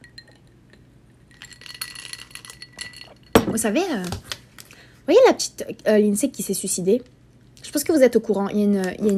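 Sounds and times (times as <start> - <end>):
ice cubes clinking against a glass of iced coffee: 1.3 - 3.5
speech: 3.6 - 4.3, 5.1 - 9.1.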